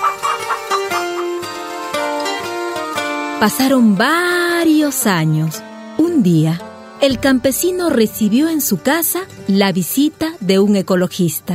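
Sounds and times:
chickens clucking in a henhouse: 0.0s - 2.0s
speech: 3.4s - 11.5s.

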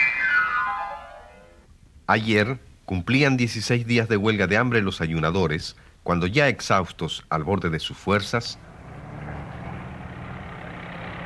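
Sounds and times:
speech: 2.1s - 8.7s
heavy engines of trucks, tractors and excavators rumbling: 8.5s - 11.2s.

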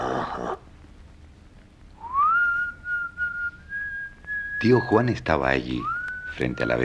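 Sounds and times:
person whistling a tune softly: 2.0s - 4.9s, 5.8s - 6.8s
speech: 4.6s - 6.8s.

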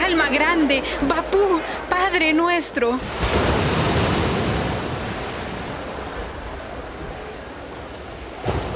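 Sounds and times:
speech: 0.1s - 3.8s
sea waves washing ashore: 3.0s - 8.7s.

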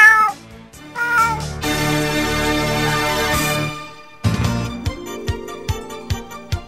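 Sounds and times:
cat meowing: 0.0s - 0.4s, 1.0s - 1.6s
busy musical passage: 1.0s - 6.6s.

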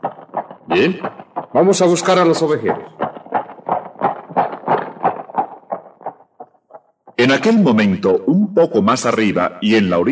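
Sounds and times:
horse hooves clip-clopping out of a river: 0.0s - 7.8s
speech: 0.7s - 3.0s, 7.3s - 10.1s.

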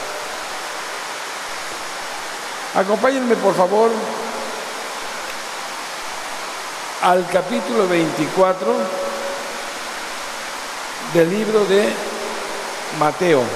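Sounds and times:
running water rushing: 0.0s - 13.5s
speech: 2.8s - 4.3s, 7.0s - 9.2s, 11.0s - 12.1s, 12.9s - 13.5s.

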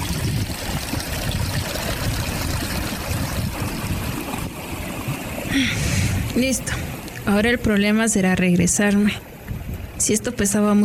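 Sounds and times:
water pouring into a clay jug at a well: 0.0s - 5.5s
speech: 5.6s - 5.8s, 6.4s - 9.3s, 10.0s - 10.8s.

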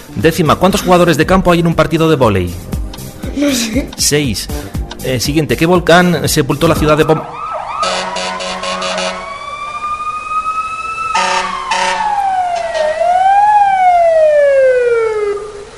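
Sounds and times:
speech: 0.1s - 2.7s, 3.4s - 8.0s
loud electronic siren signaling end of a timed round: 6.8s - 15.7s.

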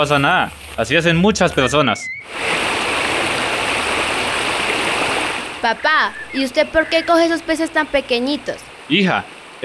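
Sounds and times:
speech: 0.0s - 2.5s, 5.6s - 9.6s
flowing stream water rushing: 2.3s - 9.6s.

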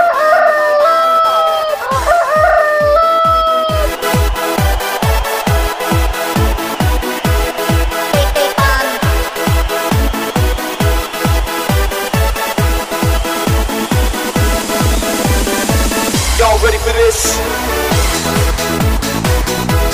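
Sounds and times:
rooster crowing: 0.0s - 6.3s
steady thumping electronic beat with music: 0.7s - 19.9s.

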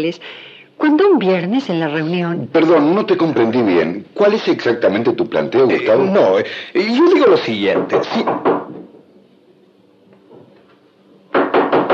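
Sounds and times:
speech: 0.0s - 8.6s
knocking on a door: 7.4s - 8.9s, 11.3s - 11.9s.

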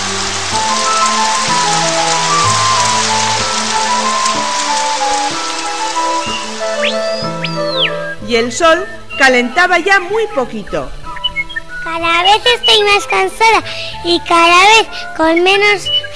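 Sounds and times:
steady dense rain pouring down: 0.0s - 8.3s, 12.0s - 15.4s
soft melodic tune: 0.0s - 16.1s
speech: 8.3s - 11.0s, 12.0s - 16.0s.

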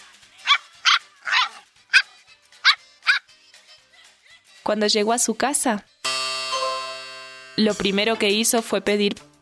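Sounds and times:
puppy yapping: 0.4s - 3.2s
speech: 4.7s - 5.9s, 7.6s - 9.3s.

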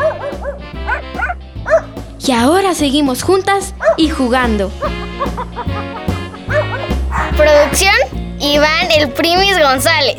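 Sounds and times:
small female dog barking: 0.0s - 1.9s, 3.8s - 4.1s
speech: 2.3s - 5.0s, 7.4s - 10.1s
laughter: 4.8s - 7.0s.

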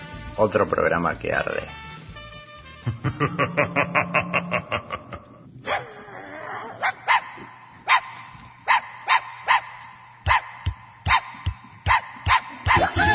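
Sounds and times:
speech: 0.4s - 1.8s, 2.8s - 4.9s
laughter: 2.8s - 5.5s
small dog barking: 6.8s - 13.0s.

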